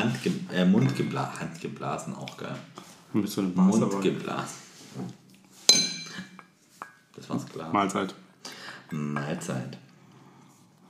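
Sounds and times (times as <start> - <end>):
speech: 0.2 - 5.2, 7.2 - 8.2, 8.9 - 9.8
soft glassy taps: 5.7 - 7.0
large mouth-blown drinking glasses clinking: 5.7 - 7.1.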